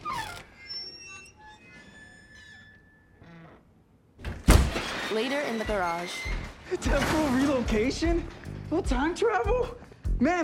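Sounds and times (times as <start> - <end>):
door creaking on squeaky hinges: 0.0 - 7.2
door banging shut: 4.2 - 7.7
speech: 5.1 - 10.4.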